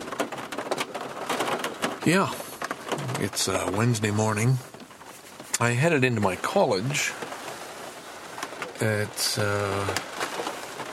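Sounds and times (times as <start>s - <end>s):
steady rain drumming on a car roof: 0.0s - 10.9s
speech: 2.0s - 2.4s, 3.0s - 4.7s, 5.6s - 7.2s, 8.8s - 10.1s.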